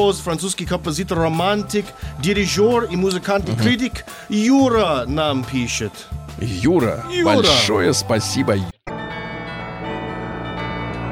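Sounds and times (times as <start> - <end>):
speech: 0.0 - 8.8
church bells ringing: 8.9 - 11.1.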